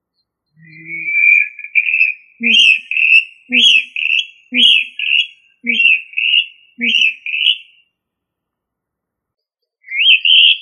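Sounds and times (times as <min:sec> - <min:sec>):
rail whistled calls: 0:00.5 - 0:07.9, 0:09.8 - 0:10.5.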